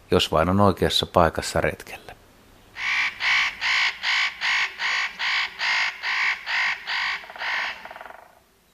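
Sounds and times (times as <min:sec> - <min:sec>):
speech: 0:00.1 - 0:02.2
Northern nutcracker giving loud hoarse rasping calls: 0:02.8 - 0:08.5.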